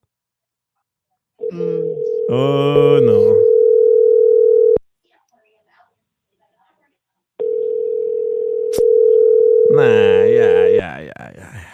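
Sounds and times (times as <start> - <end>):
electronic ringback tone of an unanswered outgoing phone call: 1.4 - 4.8, 7.4 - 10.8
speech: 1.5 - 3.5.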